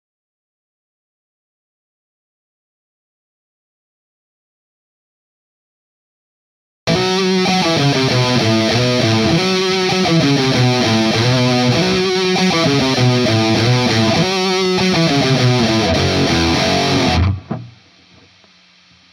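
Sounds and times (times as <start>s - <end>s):
intro guitar on the right channel: 6.9s - 17.7s.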